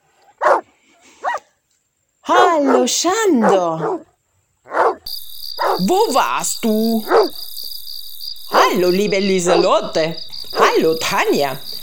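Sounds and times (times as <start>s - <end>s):
dog barking loudly while approaching: 0.4s - 1.4s, 2.3s - 4.1s, 4.7s - 5.9s, 7.0s - 7.5s, 8.5s - 8.8s, 10.5s - 10.9s
speech: 2.6s - 4.1s, 5.8s - 7.4s, 8.7s - 11.7s.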